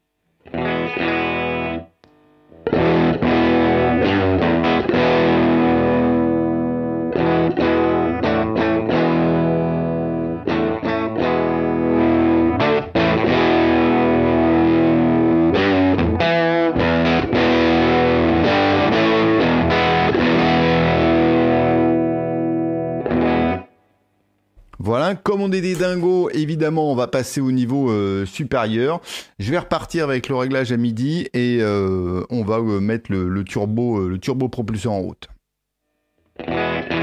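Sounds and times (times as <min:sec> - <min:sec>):
electric guitar chords on the bridge pickup with guitar volume turned down: 0:00.4 - 0:23.8, 0:36.3 - 0:37.0
speech: 0:25.0 - 0:35.4, 0:36.4 - 0:36.8.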